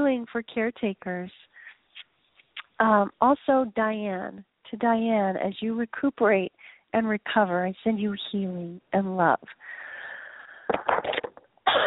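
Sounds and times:
speech: 0.1 - 1.5, 2.8 - 9.8, 10.7 - 11.8
person in a strong coughing fit: 11.1 - 11.8.

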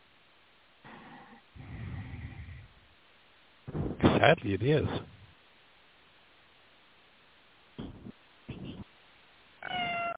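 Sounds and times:
speech: 4.2 - 5.2
cat meowing: 9.6 - 10.1.

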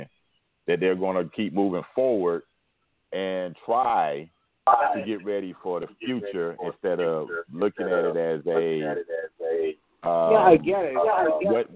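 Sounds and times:
speech: 0.7 - 2.5, 3.1 - 11.7
caller's voice echoing from a loud radio: 6.0 - 11.6.

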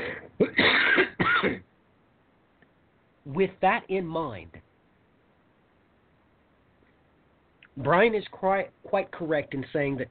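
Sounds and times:
man clearing his throat: 0.0 - 1.7
man coughing: 0.0 - 1.7
speech: 3.4 - 4.6, 7.8 - 10.0.

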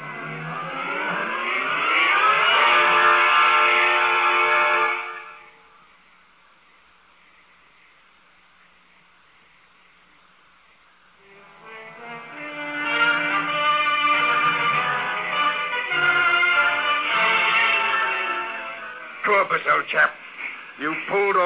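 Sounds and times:
electric locomotive pulling a train, strained motor drone: 0.0 - 6.0, 11.2 - 19.3
speech: 19.8 - 20.2.

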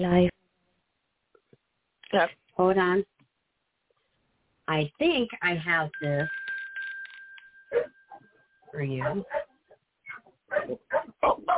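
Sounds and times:
speech: 0.0 - 0.4, 2.1 - 3.1, 4.7 - 6.4, 7.7 - 8.0, 8.7 - 9.5, 10.5 - 11.5
dog barking and yipping: 7.7 - 7.9, 9.0 - 9.5, 10.1 - 11.5.

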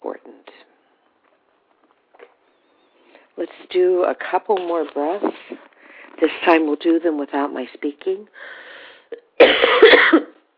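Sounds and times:
speech: 3.4 - 8.6
person coughing: 9.4 - 10.4.

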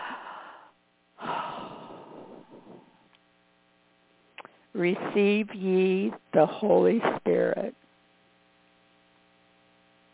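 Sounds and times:
deep breath in: 0.0 - 3.1
long exhale: 0.0 - 3.1
steady electrical hum: 0.0 - 10.1
speech: 4.8 - 7.8.

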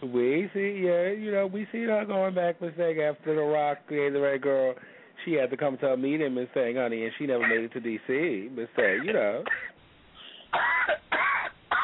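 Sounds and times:
speech: 0.1 - 9.8, 10.5 - 11.5
woman clearing her throat: 8.8 - 9.8, 10.5 - 11.8.

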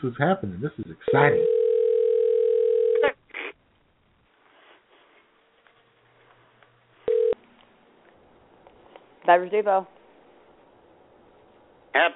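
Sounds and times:
speech: 0.0 - 1.6, 9.3 - 10.0, 11.9 - 12.1
steady telephone dial tone: 1.4 - 3.0, 7.1 - 7.4.

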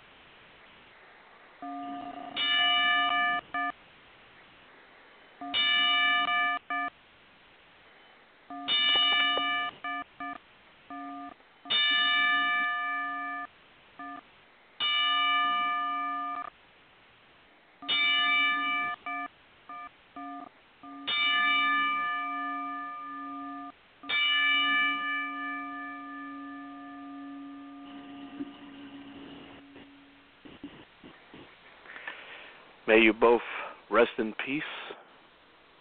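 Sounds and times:
wrestling ring bell clanging as a salute: 1.7 - 3.7, 5.5 - 6.9, 8.6 - 10.1, 11.7 - 13.5, 14.8 - 16.5, 17.9 - 19.3, 21.1 - 30.1
speech: 32.9 - 34.8.

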